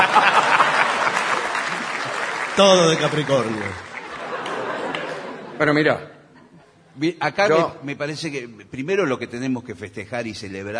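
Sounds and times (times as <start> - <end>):
audience applause: 0.0 - 5.5
laughter: 0.0 - 7.0
speech: 2.6 - 3.9, 5.6 - 6.1, 7.0 - 10.7.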